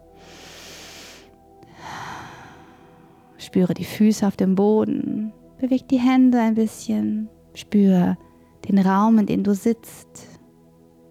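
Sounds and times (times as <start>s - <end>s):
breathy exhale through the mouth during a guided relaxation exercise: 0.2s - 3.3s
deep inhale through the nose during a guided relaxation exercise: 0.2s - 3.3s
speech: 3.4s - 10.3s.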